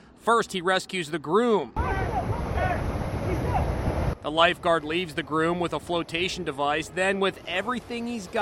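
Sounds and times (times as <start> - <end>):
wind: 0.0 - 8.4
speech: 0.2 - 1.8, 4.2 - 8.4
ocean waves crashing on the shore: 1.8 - 8.4.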